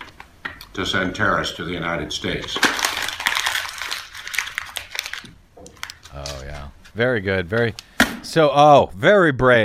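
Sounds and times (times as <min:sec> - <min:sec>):
speech: 0:00.8 - 0:02.9, 0:07.0 - 0:09.6
sheet of paper being crumpled up: 0:02.2 - 0:07.0.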